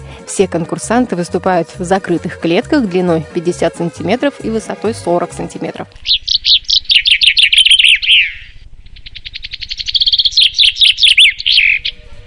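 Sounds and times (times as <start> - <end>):
speech: 0.4 - 6.2
chaffinch singing: 6.0 - 12.1
faint chirping: 6.0 - 12.2.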